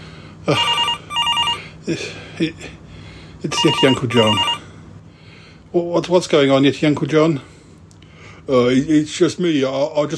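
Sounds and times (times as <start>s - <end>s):
speech: 0.5s - 0.8s, 1.8s - 2.8s, 3.4s - 4.6s, 5.7s - 7.5s, 8.5s - 10.1s
telephone ringing with trilling bursts: 0.5s - 1.8s, 3.6s - 4.7s.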